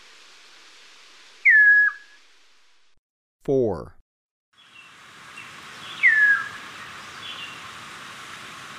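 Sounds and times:
Chestnut-crowned Antpitta whistle in Ecuador: 1.4 - 2.2, 6.0 - 6.6
speech: 3.4 - 4.0.

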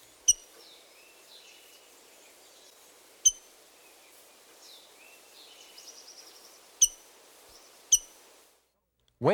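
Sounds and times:
faint warbling birdsong: 0.0 - 8.4
rose-breasted grosbeak metallic chink calls: 0.3 - 0.6, 3.2 - 3.5, 6.8 - 7.0, 7.9 - 8.2.

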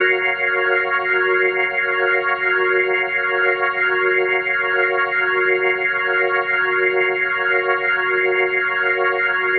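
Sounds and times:
organ playing an F sharp major seventh chord: 0.0 - 9.5.

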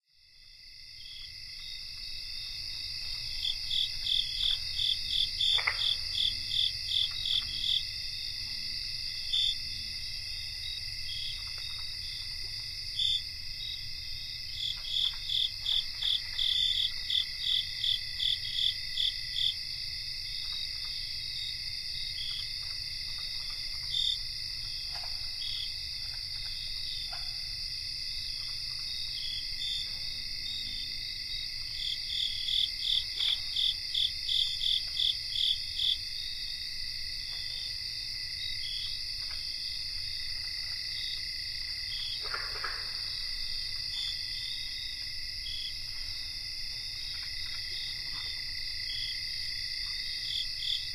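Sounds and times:
North American cricket chorus: 0.1 - 50.9.

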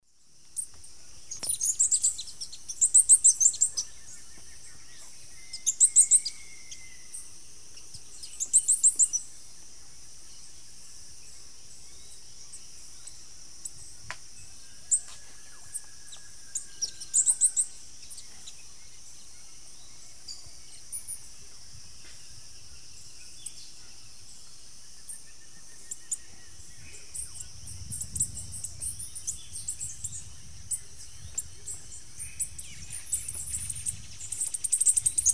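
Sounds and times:
Tangara velia song in South American eastern lowlands: 0.0 - 35.3.

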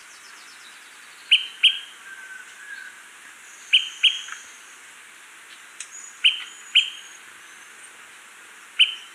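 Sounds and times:
smoke-colored pewee calling in Ecuador: 0.0 - 3.0, 3.6 - 4.6, 5.9 - 7.8, 8.8 - 9.1
soft insect-like hiss: 0.0 - 9.1.

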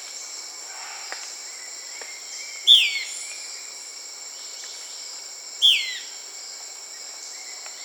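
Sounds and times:
insects buzzing: 0.0 - 7.8
Euler's flycatcher calling in South America: 5.6 - 6.0.

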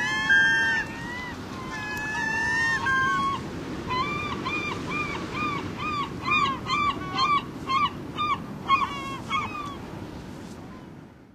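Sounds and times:
Glaucous-winged gull mewing and calling in North America: 0.0 - 9.8.

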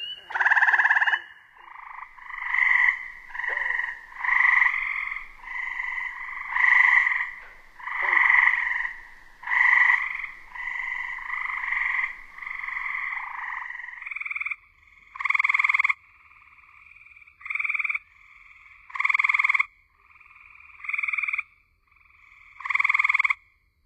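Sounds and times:
Gray treefrog trilling calls in North America: 0.0 - 23.5.

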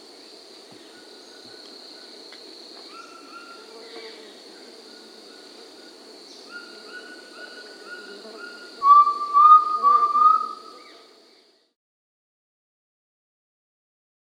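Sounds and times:
Undulated tinamou giving slurred rising whistled calls in South America: 8.6 - 10.9.

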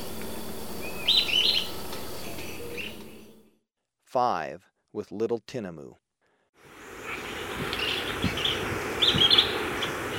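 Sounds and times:
sooty-headed tyrannulet song in Ecuador: 0.7 - 3.4, 7.0 - 10.1.

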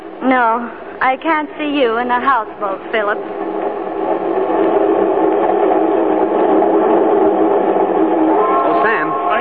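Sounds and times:
passenger train rolling along the rails: 0.0 - 9.3
speech: 0.2 - 3.5
higher tone: 2.6 - 9.3.

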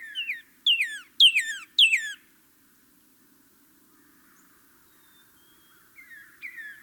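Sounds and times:
northern cardinal song in North America: 0.2 - 2.2.

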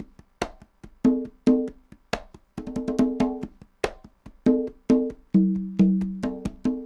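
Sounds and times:
congas playing a latin rhythm: 0.0 - 6.8.

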